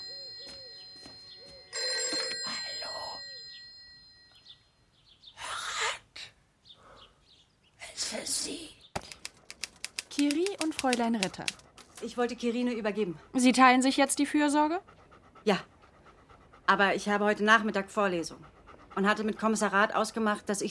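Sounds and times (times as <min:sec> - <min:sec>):
telephone ringing: 0:00.0 - 0:04.5
speech: 0:10.8 - 0:15.7, 0:16.7 - 0:20.6.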